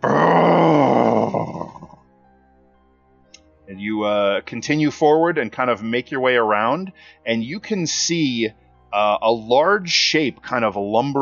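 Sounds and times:
animal roaring and growling: 0.0 - 2.0
speech: 4.4 - 11.2.

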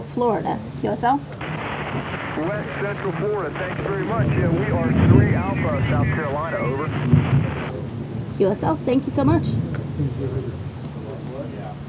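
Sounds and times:
speech: 0.2 - 7.5, 8.4 - 10.6
faint humming tone: 1.4 - 7.7
rain-like hiss: 1.4 - 7.7
thunder rumbling during a thunderstorm: 1.4 - 7.7.

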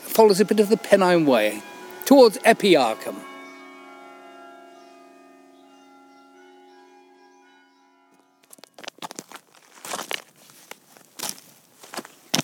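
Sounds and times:
faint steady tonal hum: 0.0 - 9.7
speech: 0.2 - 3.3
irregular crunching footsteps along a hill trail on the Pennine Way in Northumberland: 8.4 - 12.4.

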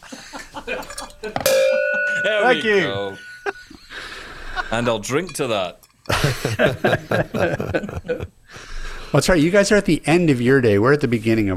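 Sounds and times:
laughter: 0.0 - 5.0, 6.1 - 8.4
speech: 0.7 - 3.3, 4.7 - 11.5
cowbell struck: 1.4 - 3.8.

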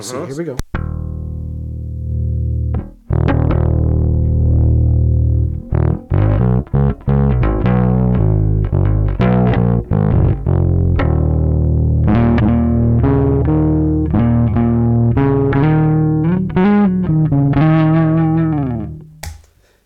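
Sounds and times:
speech: 0.0 - 0.8
overdriven bass guitar through an amp head: 0.7 - 19.4.

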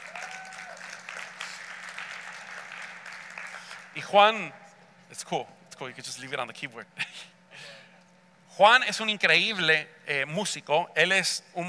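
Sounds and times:
crowd applauding for a musician: 0.0 - 4.0
speech: 4.0 - 7.3, 8.6 - 11.6.

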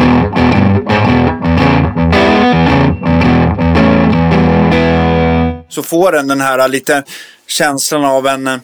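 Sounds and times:
fuzzy distorted electric guitar chords through a gritty buzzing amplifier: 0.0 - 5.7
speech: 5.8 - 8.6.

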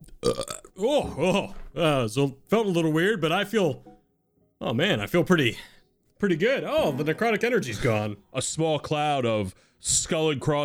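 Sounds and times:
loud burps: 0.0 - 1.7
speech: 0.2 - 3.9, 4.6 - 10.6.

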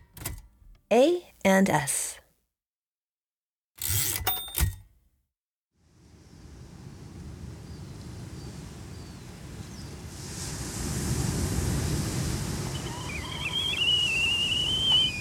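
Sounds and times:
speech: 0.9 - 2.2
ocean waves breaking on a beach: 5.9 - 15.1
faint high whistling calls: 11.7 - 15.1.

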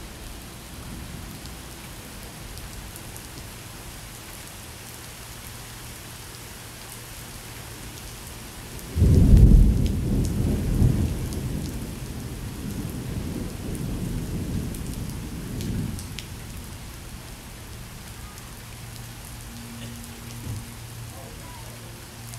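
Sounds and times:
steady summer rain: 0.0 - 22.3
deep rolling thunder: 8.9 - 17.5.

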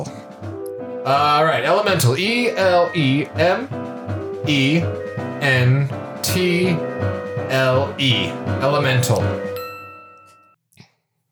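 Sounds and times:
speech: 1.0 - 3.9, 4.5 - 9.5
bell ding marking a spelled word incorrect: 9.6 - 10.6.

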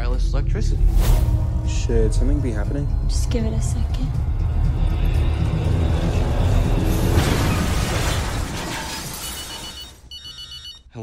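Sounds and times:
speech: 0.6 - 4.3
truck crash rumbling and grinding: 1.2 - 10.1
shattering noise: 6.3 - 10.1.

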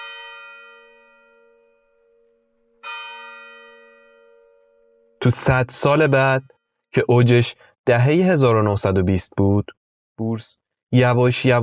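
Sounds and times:
large bell ringing: 0.0 - 6.8
speech: 5.2 - 11.6.

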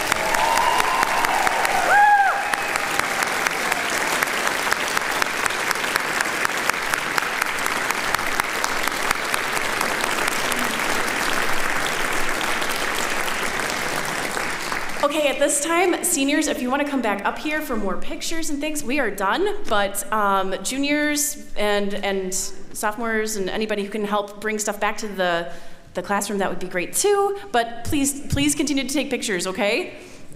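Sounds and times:
large concert audience clapping: 0.0 - 15.1
speech: 15.3 - 30.1.

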